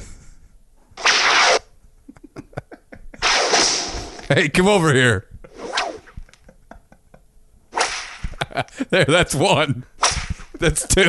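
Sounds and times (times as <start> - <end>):
loud whip cracks: 1.0 - 1.6, 3.2 - 4.3, 5.6 - 6.2, 7.7 - 8.4, 10.0 - 10.6
laughter: 2.1 - 3.2, 6.2 - 7.2, 8.2 - 9.5, 10.6 - 11.0
speech: 4.3 - 5.3, 8.8 - 9.9, 10.6 - 11.0.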